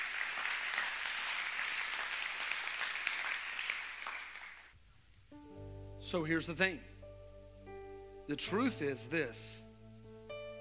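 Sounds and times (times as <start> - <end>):
large church audience clapping hands: 0.0 - 4.8
speech: 6.0 - 6.9, 8.3 - 9.6.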